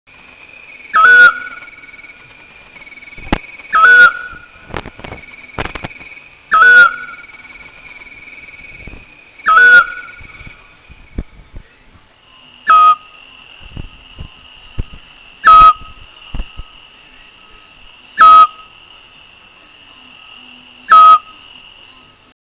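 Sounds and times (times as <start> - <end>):
adult Otus scops calling: 0.8 - 2.2, 2.9 - 11.9, 12.6 - 18.8, 20.8 - 22.1.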